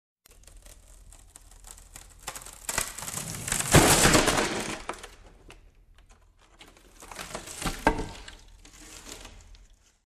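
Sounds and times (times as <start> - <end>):
wood falling: 3.2 - 9.8.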